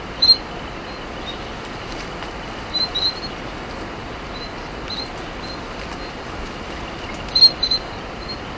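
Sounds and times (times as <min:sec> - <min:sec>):
Rhombophryne minuta calling: 0:00.1 - 0:01.6, 0:02.5 - 0:03.5, 0:04.3 - 0:08.5.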